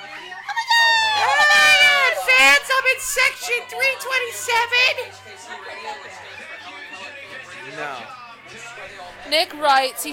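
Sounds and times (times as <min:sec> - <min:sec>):
woman screaming: 0:00.6 - 0:02.4
speech: 0:03.0 - 0:06.6, 0:07.7 - 0:10.1.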